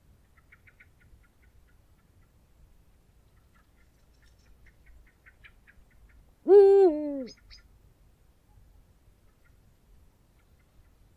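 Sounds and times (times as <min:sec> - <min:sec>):
Eurasian eagle-owl hooting: 0:06.5 - 0:07.4.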